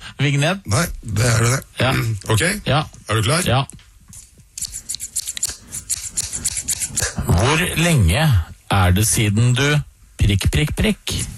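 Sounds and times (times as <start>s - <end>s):
speech: 0.2s - 3.8s, 7.4s - 11.3s
scissors snipping: 4.1s - 7.2s.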